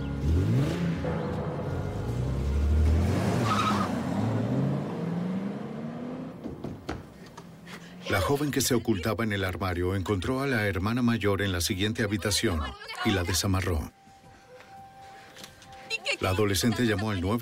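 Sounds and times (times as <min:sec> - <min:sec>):
car engine revving hard and surging away: 0:00.1 - 0:06.4
car tires squealing and skidding: 0:02.9 - 0:04.6
speech: 0:08.3 - 0:14.0, 0:16.2 - 0:17.4
laughter: 0:15.9 - 0:17.4.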